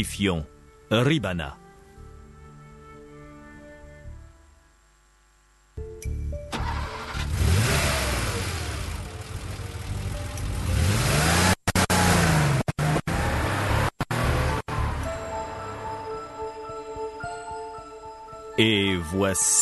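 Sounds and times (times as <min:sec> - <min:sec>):
speech: 0:00.0 - 0:01.6, 0:18.6 - 0:19.6
car engine humming: 0:06.5 - 0:17.2
car engine revving as the car accelerates away: 0:06.6 - 0:15.0.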